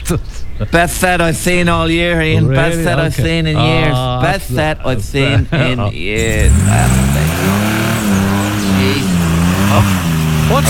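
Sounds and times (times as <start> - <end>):
speech: 0.1 - 7.0, 9.7 - 10.6
laughter: 2.0 - 10.6
car engine revving while stuck in mud: 6.2 - 10.6.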